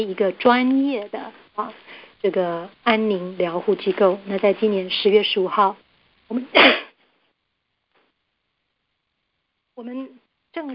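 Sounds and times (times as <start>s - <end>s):
speech: 0.0s - 6.8s, 9.8s - 10.7s
person coughing: 6.4s - 6.9s.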